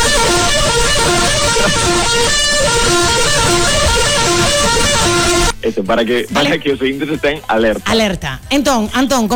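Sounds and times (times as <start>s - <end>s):
comedy horn sound effect: 0.0s - 5.6s
speech: 5.6s - 9.3s.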